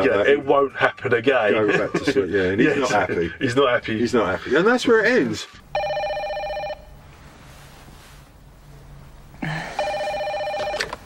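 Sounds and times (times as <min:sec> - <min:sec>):
speech: 0:00.0 - 0:05.8
low room hum: 0:00.0 - 0:11.0
electronic phone ringing: 0:05.7 - 0:07.0, 0:09.6 - 0:11.0.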